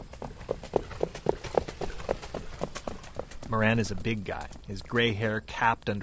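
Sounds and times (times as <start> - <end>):
pacer horse hoofbeats on a dirt track: 0.0 - 6.0
speech: 3.5 - 6.0.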